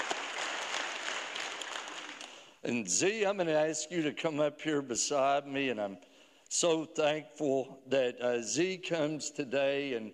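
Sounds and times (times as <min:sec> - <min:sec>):
congregation clapping: 0:00.0 - 0:02.5
speech: 0:02.6 - 0:10.1.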